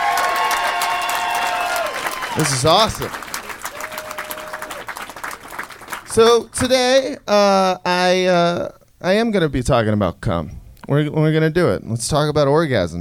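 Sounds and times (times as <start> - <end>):
cheers: 0.0 - 5.8
audience applause: 0.0 - 6.2
speech: 2.4 - 3.3, 6.1 - 12.9.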